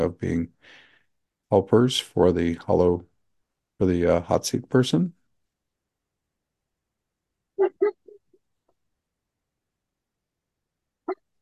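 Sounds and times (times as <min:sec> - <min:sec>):
speech: 0:00.0 - 0:00.8, 0:01.5 - 0:03.1, 0:03.8 - 0:05.2
dog whimpering: 0:07.6 - 0:08.2.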